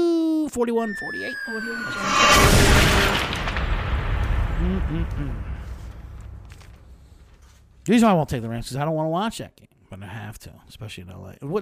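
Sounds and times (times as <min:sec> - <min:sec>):
speech: 0:00.5 - 0:03.3, 0:04.6 - 0:05.5, 0:07.9 - 0:11.6
bomb detonating: 0:01.0 - 0:07.3.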